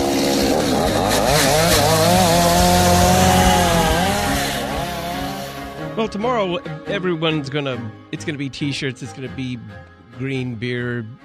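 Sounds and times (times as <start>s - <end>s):
chainsaw engine running: 0.0s - 5.8s
speech: 6.0s - 11.2s.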